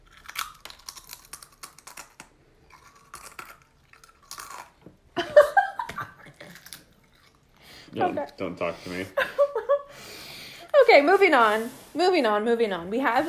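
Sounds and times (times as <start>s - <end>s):
potato chips being crunched for ASMR: 0.0s - 4.9s, 6.3s - 7.5s
speech: 8.0s - 9.4s, 10.9s - 13.2s.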